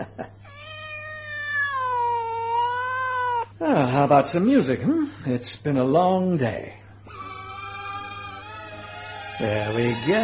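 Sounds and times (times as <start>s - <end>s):
cat meowing: 0.5s - 3.6s, 7.1s - 9.5s
speech: 3.6s - 6.8s, 9.4s - 10.2s.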